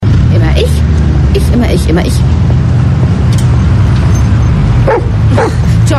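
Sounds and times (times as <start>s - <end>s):
steady low rumble: 0.0s - 5.9s
dog barking: 4.8s - 5.6s.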